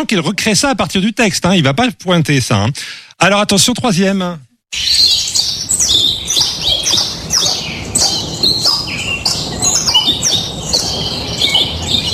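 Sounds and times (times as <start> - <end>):
speech: 0.0 - 4.9
caged birds chirping and tweeting: 4.7 - 12.1.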